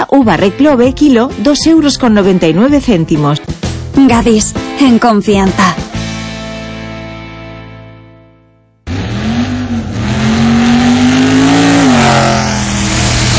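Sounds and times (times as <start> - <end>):
speech: 0.1 - 5.8
steady engine drone: 8.9 - 13.3.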